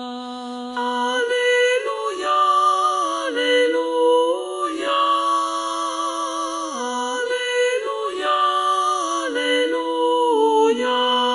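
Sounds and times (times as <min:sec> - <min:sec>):
men and contraltos singing alleluia: 0:00.7 - 0:11.3.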